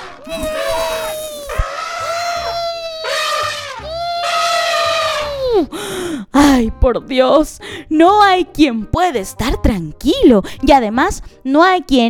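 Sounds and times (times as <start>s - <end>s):
several voices imitating elephant trumpeting: 0.0s - 5.5s
speech: 0.3s - 0.6s, 6.4s - 12.0s.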